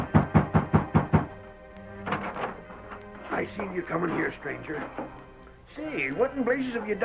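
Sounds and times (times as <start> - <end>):
knocking on the wooden door of a ranch house: 0.0 - 1.4
speech: 3.7 - 7.0.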